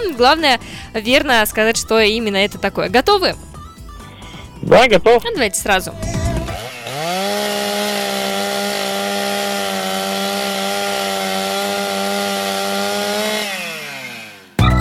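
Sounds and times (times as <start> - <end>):
speech: 0.1 - 3.5, 4.6 - 6.2
chainsaw cutting through wood: 5.6 - 14.6.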